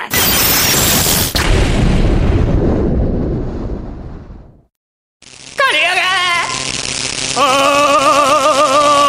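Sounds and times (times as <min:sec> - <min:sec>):
magic lightning bolt spell blast: 0:00.1 - 0:04.6, 0:05.2 - 0:09.0.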